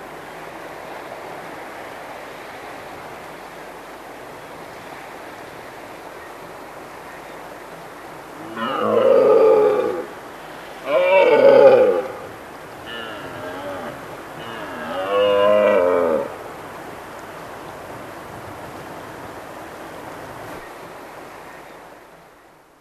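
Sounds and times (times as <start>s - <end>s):
background noise: 0.0s - 22.7s
red deer giving moaning harmonic bellows: 8.4s - 10.2s, 10.8s - 16.4s.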